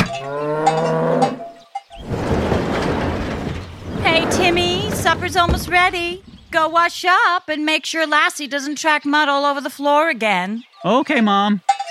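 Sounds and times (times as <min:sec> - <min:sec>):
cow mooing: 0:00.0 - 0:01.4
rustling noisy sound: 0:02.0 - 0:07.2
speech: 0:05.1 - 0:11.6.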